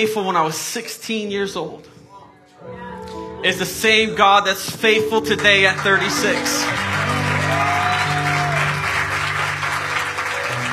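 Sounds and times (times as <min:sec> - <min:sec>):
speech: 0:00.0 - 0:02.0, 0:02.6 - 0:07.6
low organ-like tone: 0:03.4 - 0:10.0
crowd applauding: 0:04.4 - 0:10.7.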